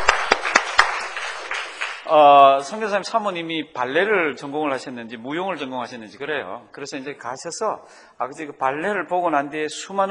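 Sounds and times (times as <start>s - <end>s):
audience at a talk clapping hands: 0.0s - 2.1s
speech: 2.1s - 10.0s.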